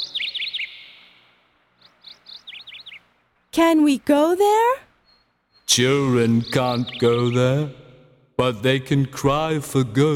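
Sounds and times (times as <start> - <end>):
birds singing in a little garden: 0.0 - 8.0
speech: 3.6 - 4.9, 5.7 - 7.8, 8.4 - 10.1.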